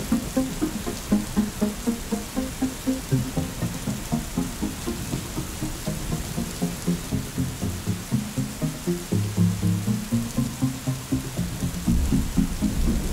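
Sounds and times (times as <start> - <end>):
rain falling: 0.0 - 13.1.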